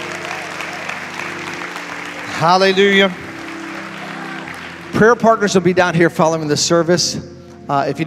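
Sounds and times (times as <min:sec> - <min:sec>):
congregation applauding: 0:00.0 - 0:06.0
speech: 0:02.4 - 0:03.2, 0:04.9 - 0:08.0.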